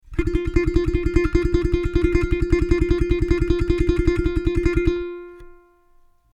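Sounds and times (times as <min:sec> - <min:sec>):
ukulele tremolo: 0:00.0 - 0:06.2.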